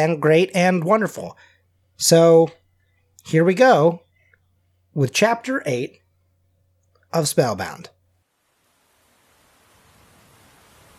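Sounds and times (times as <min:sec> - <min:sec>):
speech: 0:00.0 - 0:02.6, 0:03.2 - 0:04.0, 0:05.0 - 0:06.0, 0:07.1 - 0:08.0
heavy rain pattering against a window: 0:08.3 - 0:10.9.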